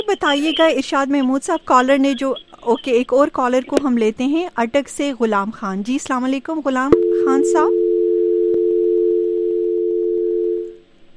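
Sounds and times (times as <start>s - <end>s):
speech: 0.1s - 7.8s
telephone dial tone after a caller's line dropped: 6.9s - 10.8s.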